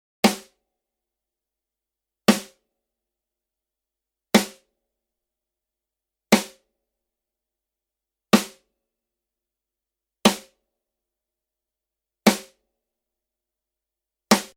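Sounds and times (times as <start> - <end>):
unprocessed snare drum of a drum kit: 0.2 - 0.6, 2.3 - 2.6, 4.4 - 4.6, 6.4 - 6.6, 8.4 - 8.6, 10.3 - 10.6, 12.3 - 12.5, 14.3 - 14.5.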